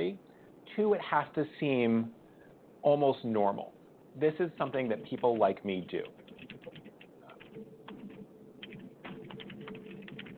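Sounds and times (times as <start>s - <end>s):
speech: 0.8s - 2.2s, 2.8s - 6.6s
person typing on a computer keyboard: 4.8s - 10.3s.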